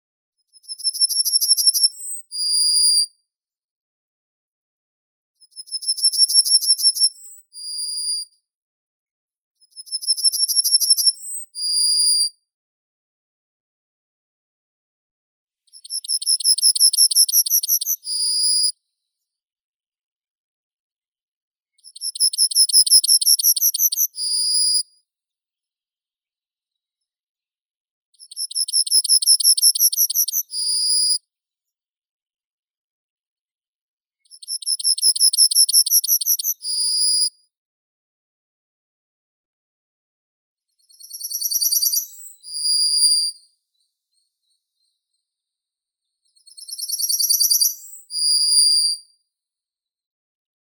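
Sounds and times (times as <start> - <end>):
yellowhammer Emberiza citrinella calling: 15.9 - 18.0, 22.0 - 24.1, 28.4 - 30.4, 34.5 - 36.6.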